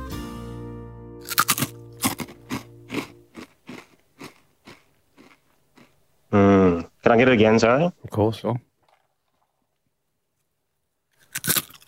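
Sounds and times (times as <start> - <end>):
potato chip chewed in the mouth: 1.2 - 6.0, 11.2 - 11.8
speech: 6.3 - 8.7.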